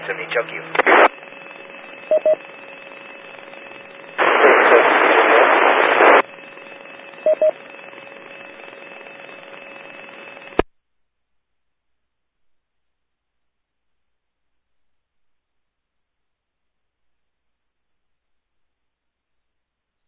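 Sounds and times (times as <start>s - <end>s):
two-way radio channel static hiss: 0.0s - 10.6s
speech: 0.1s - 1.2s, 2.1s - 2.6s
brief electronic radio beeps: 1.0s - 4.1s, 6.1s - 10.6s.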